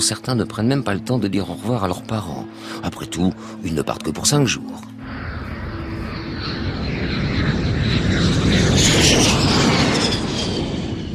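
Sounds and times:
speech: 0.0 - 5.3
military airplane propeller engines roaring on takeoff: 5.0 - 11.1.

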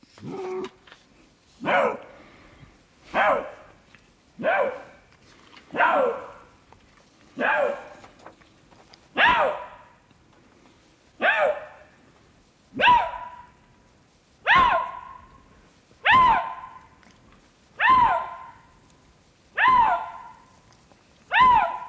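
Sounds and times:
Eurasian lynx giving hoarse dog-like barks in the Jura: 1.6 - 2.2, 3.1 - 3.8, 4.4 - 6.6, 7.4 - 8.1, 9.1 - 10.0, 11.2 - 11.9, 12.7 - 13.6, 14.4 - 17.0, 17.8 - 18.8, 19.5 - 21.8.

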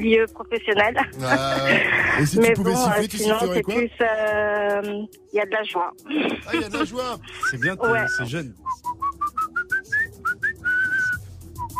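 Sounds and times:
speech: 0.0 - 8.9
laughter: 0.9 - 3.8, 6.1 - 8.2
person whistling a bouncy tune: 7.4 - 11.7.

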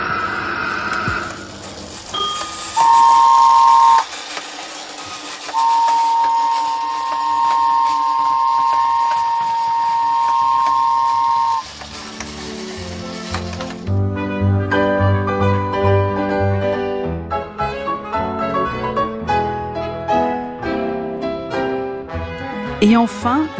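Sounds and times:
automatic RER ticket machine whirring and clattering as it prints: 0.2 - 10.0, 10.7 - 14.1
music: 5.7 - 23.5.

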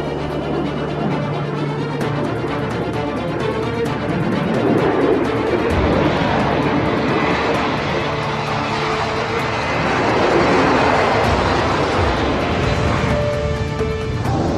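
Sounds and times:
Concorde jet engines roaring at full takeoff power: 0.0 - 14.5.

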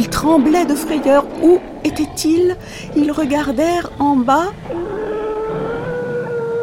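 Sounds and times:
speech: 0.2 - 5.1
drawn-out high wavering animal shriek: 4.6 - 6.6.

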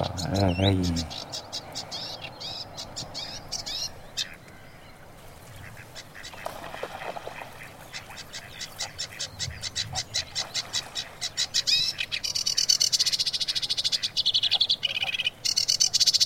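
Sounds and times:
speech: 0.0 - 1.2
sedge warbler singing from reeds: 0.0 - 6.7, 7.3 - 16.2.

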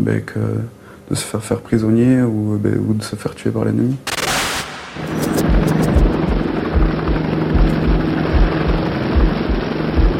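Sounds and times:
speech: 0.0 - 4.1
Caracal transport helicopter rotors beating: 5.0 - 10.1.

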